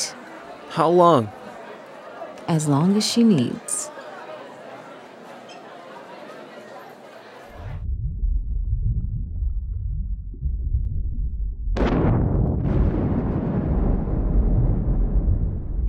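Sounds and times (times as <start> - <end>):
speech: 0.8 - 1.4, 2.5 - 3.8
rumbling bubbling underwater roar: 7.6 - 15.8
small underwater explosion at a rocky crag: 7.6 - 15.8.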